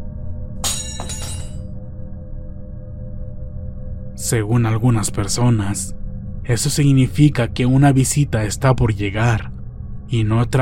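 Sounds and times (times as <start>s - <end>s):
low hum: 0.0s - 10.6s
small spoon dropping onto a hard floor: 0.6s - 1.6s
speech: 4.2s - 9.5s, 10.1s - 10.6s.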